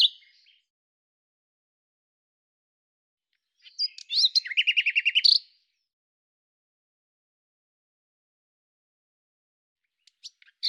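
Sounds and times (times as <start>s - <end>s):
common nightingale song: 0.0s - 0.7s, 3.3s - 5.9s, 9.8s - 10.6s.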